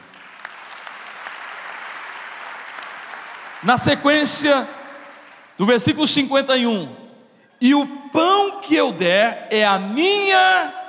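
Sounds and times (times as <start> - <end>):
congregation clapping: 0.0 - 5.9
speech: 3.6 - 4.8, 5.6 - 7.0, 7.6 - 10.8.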